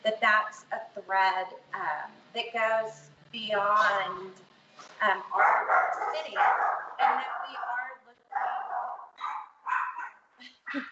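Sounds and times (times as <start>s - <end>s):
speech: 0.3s - 7.6s
dog barking: 5.2s - 10.2s.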